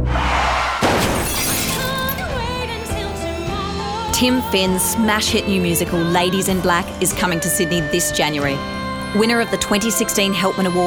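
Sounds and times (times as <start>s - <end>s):
car crash impact: 0.8s - 3.5s
glass shattering: 0.9s - 3.5s
debris tinkling: 1.0s - 3.6s
speech: 4.2s - 10.8s.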